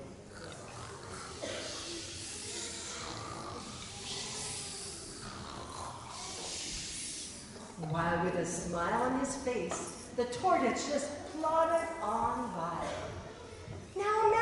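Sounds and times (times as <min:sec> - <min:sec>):
person snoring: 0:00.2 - 0:07.8
speech: 0:07.8 - 0:13.1.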